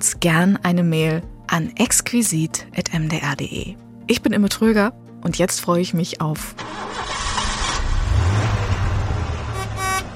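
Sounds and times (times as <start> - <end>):
speech: 0.0 - 7.1
broadband road noise: 6.6 - 10.1
learner's car engine pulling away slowly in first gear: 6.6 - 10.1.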